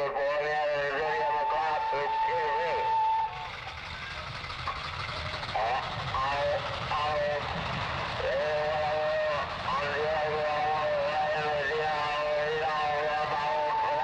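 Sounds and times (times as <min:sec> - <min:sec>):
crowd of holidaymakers murmuring on a platform: 0:00.1 - 0:14.0
train rumbling in at a station platform: 0:00.5 - 0:14.0
long wavering metallic squeals of train wheels or brakes: 0:01.3 - 0:06.7.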